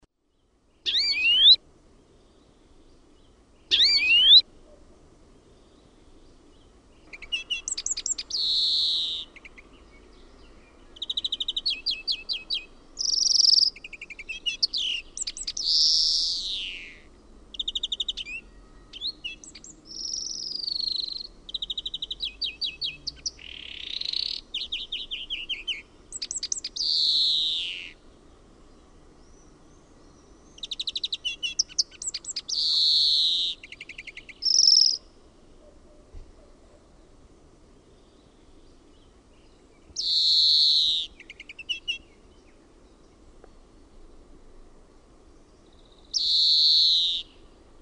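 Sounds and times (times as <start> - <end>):
European greenfinch singing: 0.8 - 1.6, 3.7 - 4.4, 6.6 - 28.0, 30.1 - 35.1, 38.2 - 42.6, 45.7 - 47.4.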